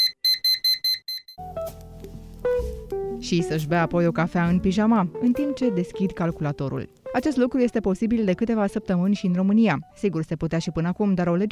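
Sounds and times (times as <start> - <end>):
alarm clock beeping in high-pitched pulses: 0.0 - 1.4
speech: 3.2 - 11.5.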